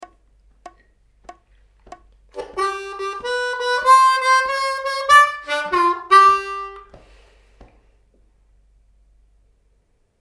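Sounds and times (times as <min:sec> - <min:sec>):
fun shuffle licks on harmonica: 0:02.4 - 0:07.0.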